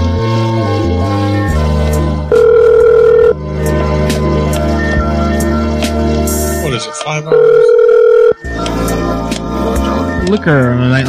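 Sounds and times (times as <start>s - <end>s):
music: 0.0s - 11.0s
telephone ringback tone on an outgoing call: 2.3s - 3.4s, 7.3s - 8.6s
speech: 10.4s - 11.0s.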